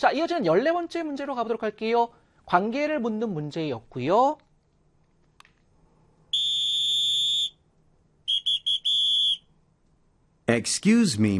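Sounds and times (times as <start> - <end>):
speech: 0.0 - 4.4, 10.5 - 11.3
shrill whistle blasts: 6.3 - 7.6, 8.2 - 9.5.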